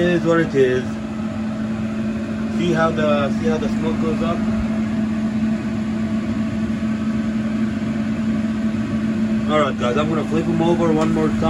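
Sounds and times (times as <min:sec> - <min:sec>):
kitchen ventilator fan running during cooking: 0:00.0 - 0:11.4
speech: 0:00.1 - 0:01.0, 0:02.6 - 0:04.8, 0:09.5 - 0:11.4.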